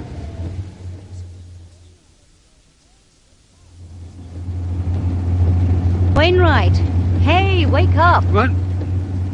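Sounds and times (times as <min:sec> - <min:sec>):
car engine humming heard from inside the vehicle while driving: 0:00.0 - 0:09.3
speech: 0:06.2 - 0:08.6.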